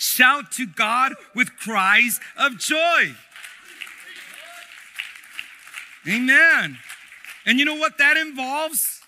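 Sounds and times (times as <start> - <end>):
speech: 0.2 - 3.3, 6.0 - 9.0
audience clapping hands: 2.0 - 9.0.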